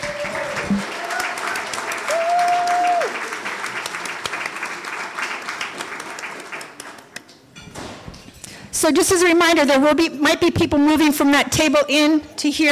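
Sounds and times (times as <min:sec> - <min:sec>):
room full of people applauding: 0:00.0 - 0:07.2
speech: 0:00.7 - 0:00.9, 0:08.8 - 0:12.7.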